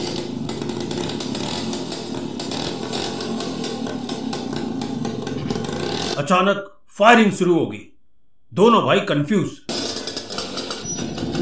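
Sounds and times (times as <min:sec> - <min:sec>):
scooter kick-start: 0:00.0 - 0:06.2, 0:09.7 - 0:11.4
speech: 0:06.2 - 0:07.9, 0:08.5 - 0:09.6.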